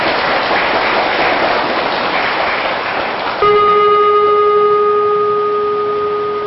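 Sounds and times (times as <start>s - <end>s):
group of children clapping: 0.0s - 4.0s
bell ringing: 3.4s - 6.4s.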